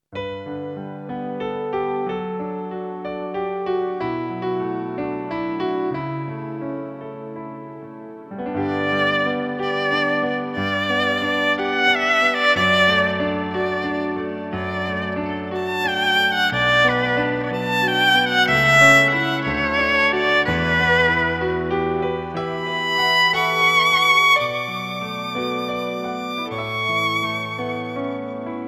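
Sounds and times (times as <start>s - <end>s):
piano: 0.0s - 28.6s
violin: 8.3s - 28.6s.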